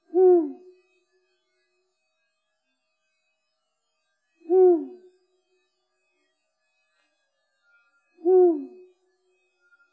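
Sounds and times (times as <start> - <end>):
Bubo bubo calling: 0.1 - 0.6, 8.2 - 8.8.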